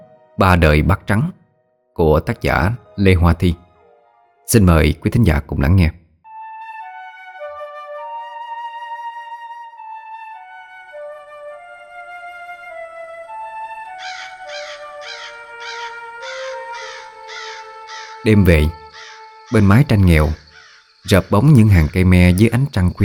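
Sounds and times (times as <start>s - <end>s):
speech: 0.4s - 1.4s, 2.0s - 3.6s, 4.5s - 6.0s, 18.2s - 18.8s, 19.5s - 20.4s, 21.0s - 23.0s
crows cawing outside in a yard at night under tamarind trees: 13.9s - 22.4s.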